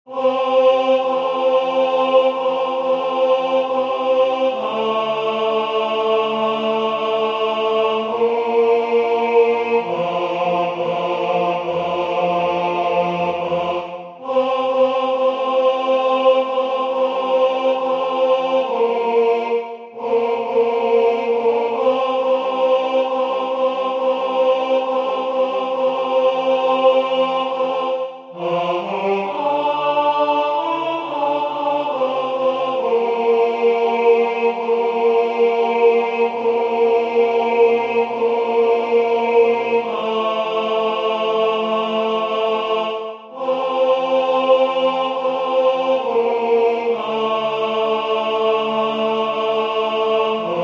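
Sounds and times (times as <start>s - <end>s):
tenor singing a Marian hymn in French: 0.0s - 50.6s.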